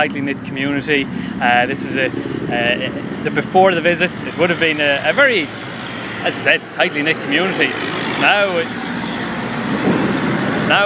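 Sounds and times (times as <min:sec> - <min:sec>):
speech: 0:00.0 - 0:08.8, 0:10.7 - 0:10.8
tractor passing on a road: 0:00.0 - 0:10.8.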